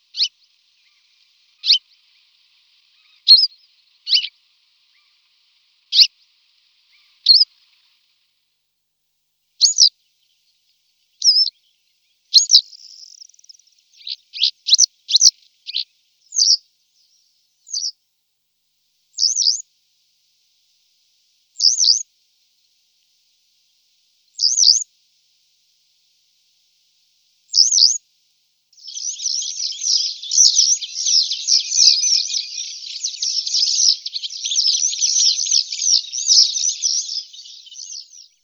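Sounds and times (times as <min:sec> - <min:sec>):
western yellow wagtail calling: 0:00.0 - 0:08.2, 0:09.6 - 0:09.9, 0:11.2 - 0:11.5, 0:12.4 - 0:16.6, 0:28.8 - 0:38.4.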